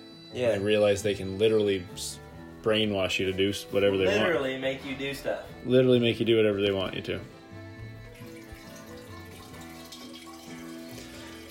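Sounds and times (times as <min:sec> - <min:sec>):
speech: 0:00.3 - 0:07.4
water running from a tap into a basin: 0:08.1 - 0:11.4.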